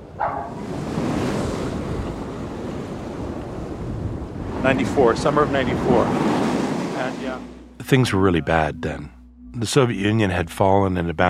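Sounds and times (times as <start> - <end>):
wind rushing across the microphone: 0.0 - 7.8
ocean waves roaring in Cuba: 0.0 - 8.5
speech: 0.2 - 0.8, 4.6 - 6.3, 7.1 - 11.2.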